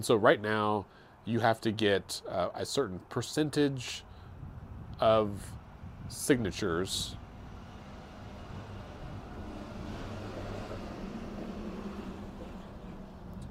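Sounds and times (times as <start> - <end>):
speech: 0.0 - 4.1, 5.0 - 7.2
heavy school activity bus rumbling past on a street: 4.1 - 13.4.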